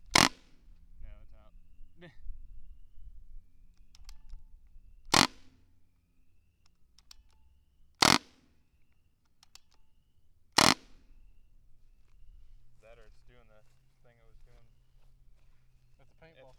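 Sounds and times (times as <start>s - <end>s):
short barrel carbine gunshots: 0.1s - 0.5s, 5.1s - 5.5s, 8.0s - 8.5s, 10.6s - 11.1s.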